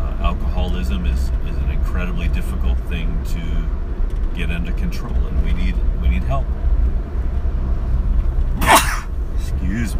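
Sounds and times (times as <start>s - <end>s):
road and engine noise inside a moving car: 0.0s - 9.9s
speech: 0.7s - 3.8s, 4.4s - 7.0s, 9.5s - 9.9s
person sneezing: 8.6s - 9.1s.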